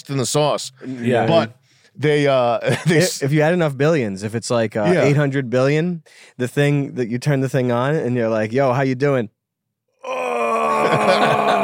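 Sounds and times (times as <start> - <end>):
speech: 0.0 - 9.4
laughter: 2.6 - 3.2, 10.5 - 11.6
human voice imitating a groan: 10.0 - 11.6.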